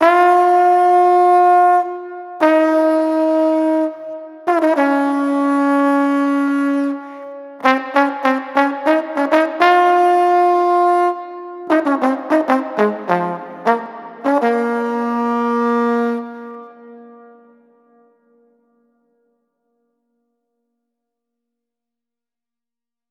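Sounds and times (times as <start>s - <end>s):
trombone through Master Room MR-III reverb: 0.0s - 18.2s.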